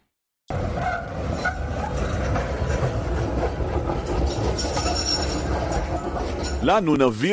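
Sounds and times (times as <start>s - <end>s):
faint metallic squeal of tram wheels: 0.5s - 3.4s, 4.0s - 6.7s
tram rolling along its rails: 0.5s - 7.3s
speech: 6.6s - 7.3s.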